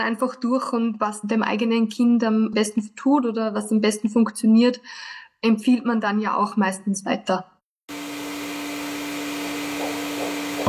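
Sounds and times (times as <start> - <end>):
speech: 0.0 - 7.5
vacuum cleaner running: 7.9 - 10.6.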